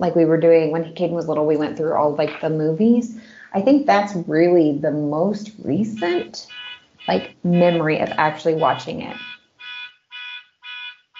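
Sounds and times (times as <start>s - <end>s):
speech: 0.0s - 9.3s
car alarm blaring outside: 6.0s - 11.1s.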